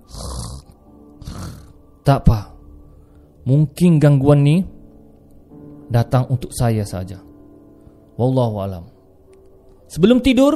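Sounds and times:
sleeping man snoring: 0:00.0 - 0:01.8
speech: 0:02.1 - 0:02.5, 0:03.4 - 0:04.8, 0:05.9 - 0:07.3, 0:08.2 - 0:08.9, 0:09.9 - 0:10.5.

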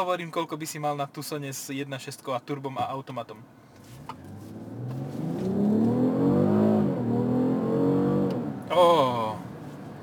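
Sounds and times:
speech: 0:00.0 - 0:03.6, 0:08.7 - 0:09.5
car engine revving while accelerating: 0:03.8 - 0:09.1.

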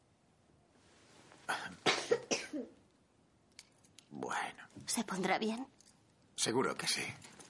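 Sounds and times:
person with whooping cough coughing on request: 0:01.5 - 0:02.8
speech: 0:05.0 - 0:05.8, 0:06.4 - 0:07.4.

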